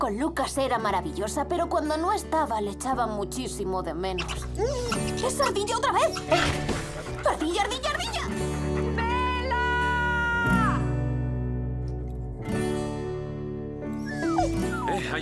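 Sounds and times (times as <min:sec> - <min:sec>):
speech: 0:00.0 - 0:08.5
dense sustained musical backdrop: 0:00.0 - 0:15.1
dog whimpering and yipping: 0:04.2 - 0:09.8, 0:14.0 - 0:15.1.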